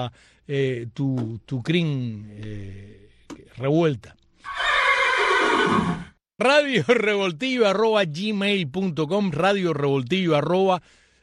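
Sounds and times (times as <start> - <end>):
speech: 0.0 - 3.0, 3.6 - 4.7, 5.7 - 11.0
horse whinny: 4.4 - 6.2.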